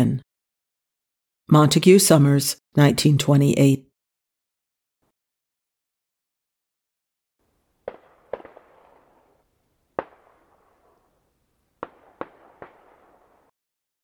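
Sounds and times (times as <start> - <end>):
speech: 1.5 - 3.9
sharp pops echoing down an outdoor street: 7.9 - 9.1, 10.0 - 10.6, 11.8 - 13.1.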